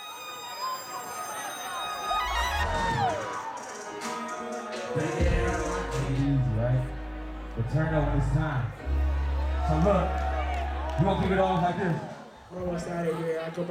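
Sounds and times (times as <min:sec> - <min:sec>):
crowd cheering in a concert hall: 0:00.0 - 0:13.6
large crowd of students chanting a name in unison in a concert hall: 0:02.7 - 0:07.6
speech: 0:05.0 - 0:07.0, 0:07.6 - 0:09.0, 0:09.7 - 0:10.3, 0:11.0 - 0:13.6
deep rumbling bass: 0:05.2 - 0:11.8.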